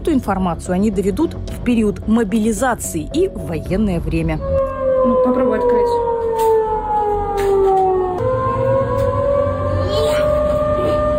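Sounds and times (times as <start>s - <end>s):
speech: 0.1s - 6.0s
air raid warning siren wailing: 4.0s - 11.1s.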